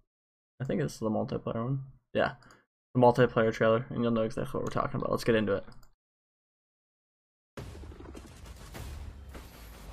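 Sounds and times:
speech: 0.6s - 5.8s
heavy rumbling explosions in a video game trailer: 7.6s - 9.9s.

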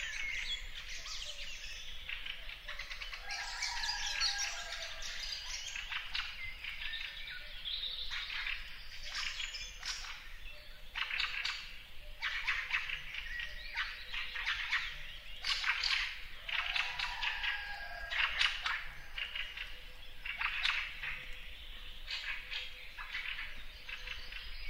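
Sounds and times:
dawn chorus of many birds singing in a lakeside forest: 0.0s - 24.6s.

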